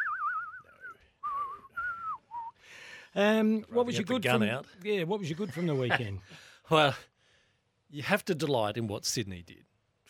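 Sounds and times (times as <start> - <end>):
person whistling a short film-theme melody: 0.0 - 2.6
speech: 3.1 - 7.1, 7.9 - 10.0.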